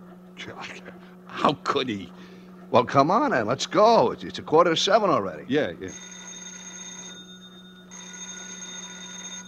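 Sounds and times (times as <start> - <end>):
speech: 0.5 - 6.2
telephone ringing with an electronic trill: 5.9 - 9.4.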